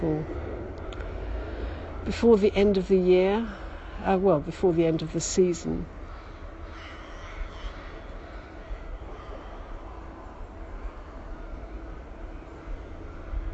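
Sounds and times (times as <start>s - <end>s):
speech: 0.0s - 0.4s, 2.0s - 6.0s
distant trucks rumbling: 0.0s - 13.5s
crows cawing in the open air: 6.0s - 11.9s.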